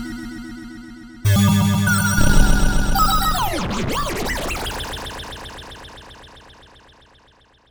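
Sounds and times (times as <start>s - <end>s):
weird Nord Lead A1 synthesizer sound: 1.3s - 4.8s.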